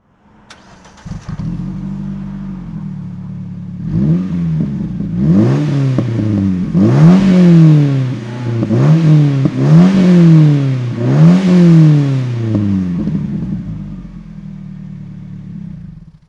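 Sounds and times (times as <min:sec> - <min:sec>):
Morgan 4 4 car engine throttle: 0:00.0 - 0:16.2.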